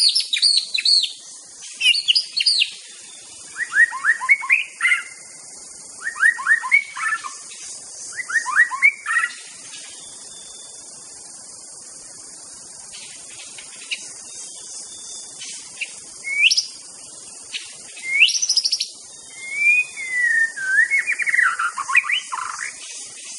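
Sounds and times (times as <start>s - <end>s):
steady insect drone: 0.0s - 23.3s
wild white-rumped shama singing in forest: 3.6s - 5.1s, 6.0s - 7.2s, 18.0s - 22.3s.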